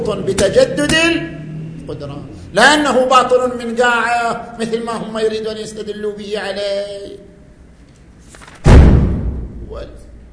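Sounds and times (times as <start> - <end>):
speech: 0.0 - 7.3, 9.7 - 10.0
door banging shut with a heavy thud: 8.6 - 9.6.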